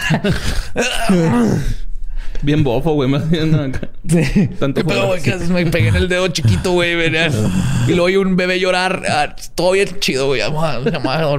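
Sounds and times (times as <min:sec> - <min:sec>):
speech: 0:00.1 - 0:01.8, 0:02.4 - 0:11.3
laughter: 0:04.1 - 0:07.5, 0:10.5 - 0:11.3
voice imitating deep raspy heavy breathing: 0:05.6 - 0:08.2.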